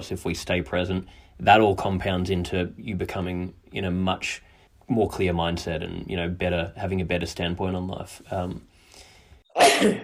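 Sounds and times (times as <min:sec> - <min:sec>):
speech: 0:00.0 - 0:08.7, 0:09.6 - 0:10.0
loud sneeze close to the microphone: 0:09.6 - 0:10.0.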